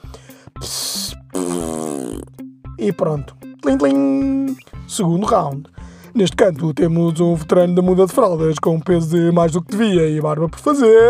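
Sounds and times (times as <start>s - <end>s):
baby farting into a clean diaper: 1.3s - 2.4s
speech: 2.8s - 11.0s.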